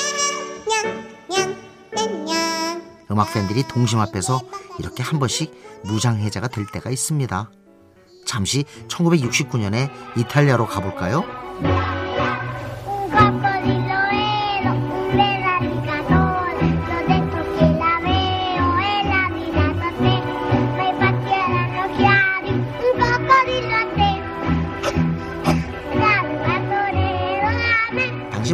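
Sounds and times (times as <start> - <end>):
four-year-old child singing a bouncy song at children's song contest: 0.0 - 7.4, 8.1 - 24.3, 25.5 - 28.5
speech: 3.1 - 7.6, 8.2 - 12.0
steady instrumental accompaniment with a rhythmic bass: 11.3 - 28.5.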